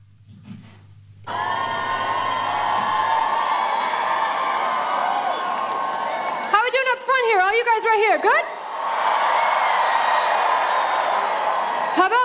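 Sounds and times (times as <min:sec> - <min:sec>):
huge festival crowd at Glastonbury cheering and whooping at live concert: 0:01.2 - 0:06.6, 0:08.6 - 0:12.2
speech: 0:07.6 - 0:08.6.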